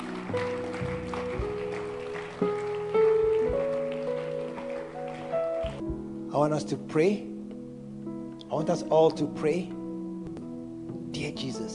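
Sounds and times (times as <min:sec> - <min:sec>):
audience applauding: 0:00.0 - 0:05.8
sustained organ or keyboard chords: 0:00.0 - 0:11.3
speech: 0:00.3 - 0:00.6, 0:06.4 - 0:07.3, 0:08.5 - 0:09.8.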